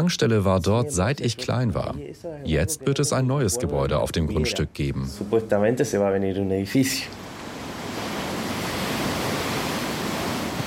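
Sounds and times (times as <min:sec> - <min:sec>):
speech: 0:00.0 - 0:07.3
ocean surf rolling onto the shore of the Peninsula: 0:07.1 - 0:10.6.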